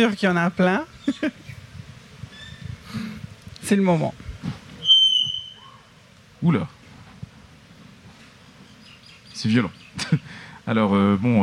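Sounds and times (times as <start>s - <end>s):
speech: 0.0s - 1.4s, 3.6s - 4.6s, 6.4s - 6.8s, 9.4s - 11.4s
loud piercing high-pitched whistle: 4.8s - 5.8s
laughter: 10.0s - 10.4s.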